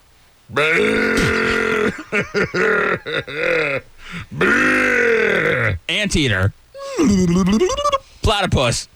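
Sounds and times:
speech: 0.5 - 1.5, 2.1 - 8.9
person imitating a camel grunting: 0.5 - 5.9, 6.8 - 8.0.

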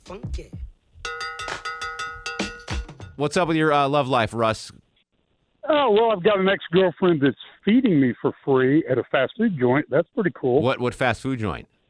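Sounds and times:
speech: 0.1 - 1.2, 3.2 - 4.8, 5.7 - 11.7
radio jingle with cowbell strikes: 1.0 - 3.3.

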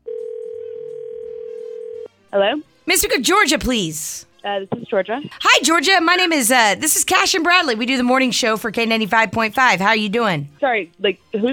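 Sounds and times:
telephone dial tone while placing a call: 0.0 - 2.1
speech: 2.3 - 11.5.

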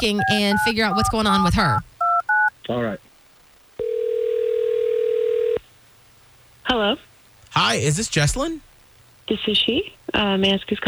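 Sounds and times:
speech: 0.0 - 1.9, 2.7 - 3.0, 6.7 - 8.7, 9.3 - 10.8
phone line ringing with a steady electronic tone: 0.0 - 2.5, 3.8 - 5.6.

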